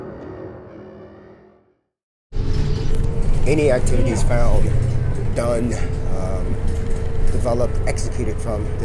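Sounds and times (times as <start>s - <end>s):
traffic noise: 2.3s - 8.8s
city bus X8 pulling away with low engine and road noise: 2.4s - 8.8s
speech: 3.5s - 6.0s, 7.4s - 8.8s.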